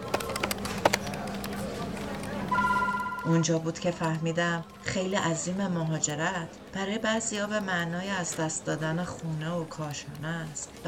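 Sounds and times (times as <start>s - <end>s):
taps and clicks in a busy office: 0.1s - 4.2s
electronic telephone ringing in a busy office: 2.5s - 4.6s
speech: 3.2s - 10.8s.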